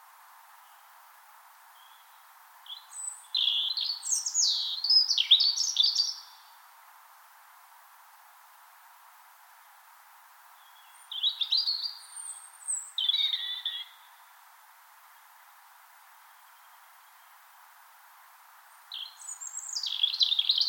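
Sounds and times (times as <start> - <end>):
European robin singing on a spring morning in Finland: 1.8 - 6.5, 10.6 - 14.2, 18.8 - 20.6.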